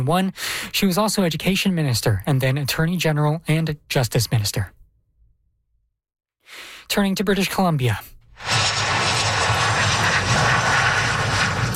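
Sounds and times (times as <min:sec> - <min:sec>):
speech: 0:00.0 - 0:04.8, 0:06.5 - 0:08.6
airplane engine drone of a plane landing in Victoria, British Columbia: 0:08.4 - 0:11.7.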